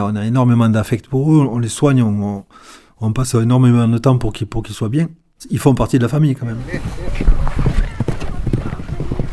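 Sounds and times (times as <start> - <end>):
speech: 0.0 - 7.4
horse hooves clip-clopping: 6.7 - 9.3.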